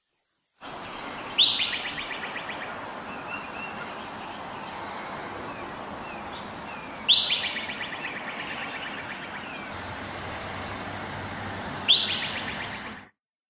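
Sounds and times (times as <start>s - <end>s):
outdoor hiss: 0.0s - 13.1s
groundhog whistling call: 11.9s - 12.4s.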